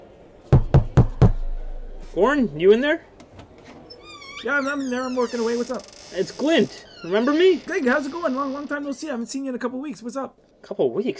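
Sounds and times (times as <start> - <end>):
firm knocks on a door: 0.6 - 2.8
speech: 2.1 - 3.1, 4.4 - 11.1.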